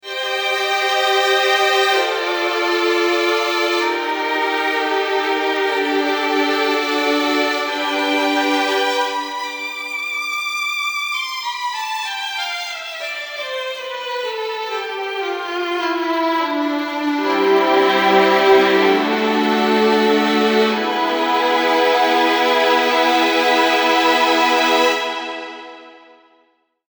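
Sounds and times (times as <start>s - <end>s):
Memotron violins in a studio: 0.0s - 26.4s.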